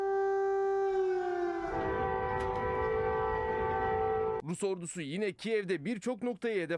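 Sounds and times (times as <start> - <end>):
air raid sirens wailing: 0.0 - 4.4
speech: 4.5 - 6.7.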